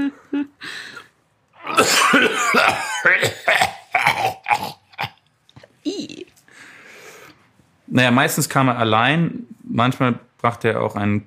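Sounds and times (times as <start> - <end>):
person imitating a deep rattling demonic-sounding cough: 1.7 - 5.2
speech: 8.0 - 11.2.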